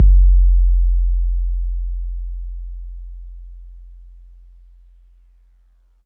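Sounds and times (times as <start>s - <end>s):
808 bass drum in F: 0.0s - 3.5s.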